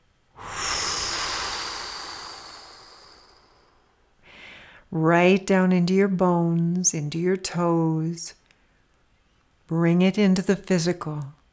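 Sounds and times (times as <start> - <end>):
deep breathing, inhaling and blowing out: 0.4 - 4.9
speech: 4.9 - 8.4, 9.7 - 11.4.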